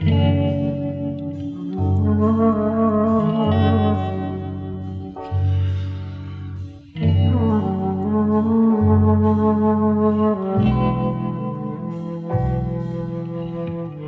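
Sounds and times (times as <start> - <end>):
flutey guitar: 0.0 - 14.0.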